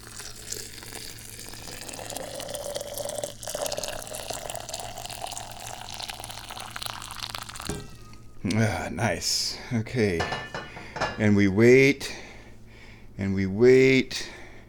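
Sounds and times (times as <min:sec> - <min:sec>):
boiling water poured into a teapot: 0:00.0 - 0:08.4
speech: 0:08.5 - 0:10.5, 0:11.1 - 0:12.2, 0:13.2 - 0:14.3.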